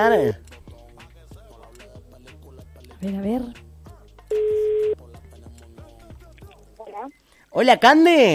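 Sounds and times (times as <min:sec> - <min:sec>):
speech: 0:00.0 - 0:00.6, 0:03.0 - 0:03.6, 0:07.0 - 0:08.3
telephone line tone while placing a call: 0:04.3 - 0:05.0.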